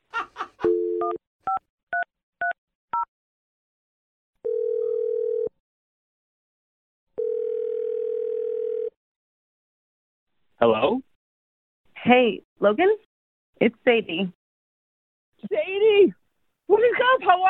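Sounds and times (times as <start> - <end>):
long steady phone ringing tones: 0.6 - 1.2, 4.4 - 5.5, 7.2 - 9.0
phone dial tone: 0.6 - 1.6, 4.4 - 5.6, 7.2 - 9.0
speech: 10.6 - 11.0, 12.1 - 14.4, 15.4 - 17.4.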